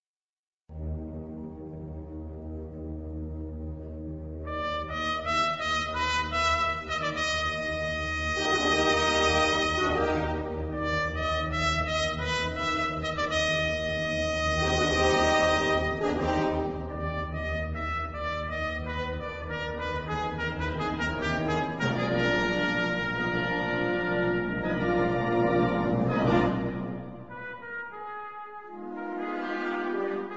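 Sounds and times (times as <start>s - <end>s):
trumpet concerto: 4.5s - 30.3s.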